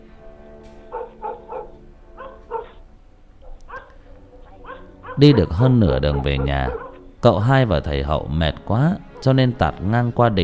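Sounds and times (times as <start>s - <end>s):
dogs barking faintly in the distance across fields at night: 0.8s - 7.3s, 9.0s - 9.7s
speech: 5.2s - 10.4s.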